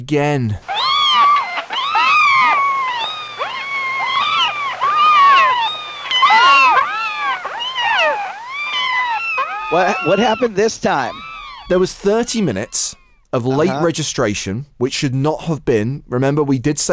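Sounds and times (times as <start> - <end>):
speech: 0.0 - 0.7, 9.7 - 16.9
many high-pitched kittens meowing: 0.6 - 13.9.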